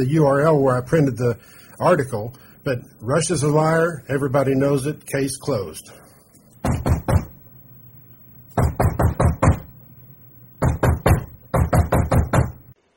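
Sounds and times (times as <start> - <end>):
speech: 0.0 - 6.0
knocking on a door: 6.6 - 7.3, 8.6 - 9.7, 10.6 - 12.6.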